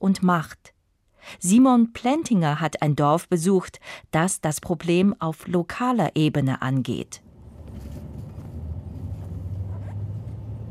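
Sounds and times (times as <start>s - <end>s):
speech: 0.0s - 7.2s
bus engine rumble travelling through the flat Argentine Pampa: 7.2s - 10.6s
road drone inside a bus: 7.2s - 10.6s.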